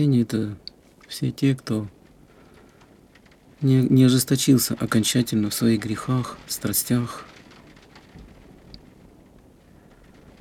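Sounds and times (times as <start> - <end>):
speech: 0.0 - 2.0, 3.6 - 7.3
very heavy rain outside a window: 0.0 - 10.3
low rumbling of thunder: 0.8 - 10.3.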